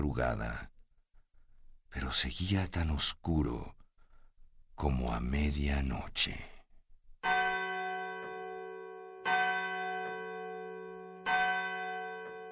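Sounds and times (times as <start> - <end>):
speech: 0.0 - 0.7, 1.9 - 3.8, 4.8 - 6.6
church bell tolling the hour: 7.2 - 12.4.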